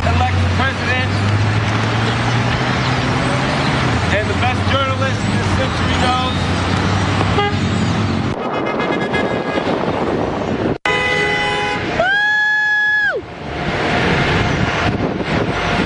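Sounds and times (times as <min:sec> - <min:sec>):
engine rumble: 0:00.0 - 0:08.8, 0:11.5 - 0:15.8
steady roadside traffic noise: 0:00.0 - 0:15.8
other car horns honking at a busy intersection: 0:07.2 - 0:10.2, 0:10.8 - 0:12.0
loud sustained car horn blaring at a busy intersection: 0:07.3 - 0:07.7, 0:08.3 - 0:10.1, 0:10.8 - 0:11.9.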